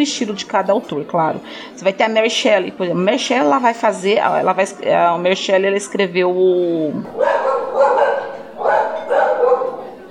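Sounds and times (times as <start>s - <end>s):
speech: 0.0s - 7.5s
dog barking: 7.1s - 10.0s.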